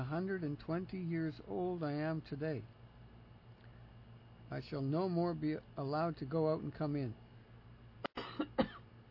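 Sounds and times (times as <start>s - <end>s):
speech: 0.0s - 2.8s, 4.5s - 7.2s
person coughing after choking on water: 8.1s - 8.9s.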